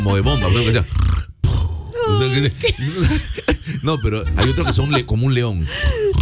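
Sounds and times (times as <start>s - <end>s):
speech: 0.0s - 1.2s, 2.1s - 6.2s
person imitating loud snoring with their voice: 0.5s - 2.2s, 5.8s - 6.2s
laughter: 2.6s - 6.1s.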